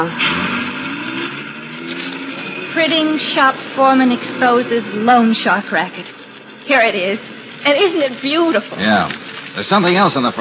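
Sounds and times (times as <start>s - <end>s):
speech: 0.0s - 0.4s, 2.8s - 10.3s
heavy truck engines rumbling as trucks drive away: 0.0s - 10.3s.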